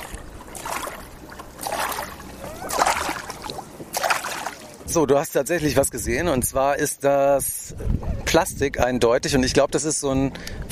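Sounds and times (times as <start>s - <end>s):
kayak paddle strokes splashing through water: 0.0s - 4.9s
water gurgling: 0.0s - 5.0s
speech: 4.9s - 10.7s.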